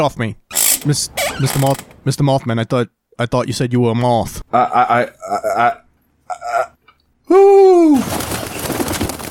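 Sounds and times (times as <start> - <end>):
speech: 0.0 - 6.7
person imitating an owl hooting: 4.5 - 8.0.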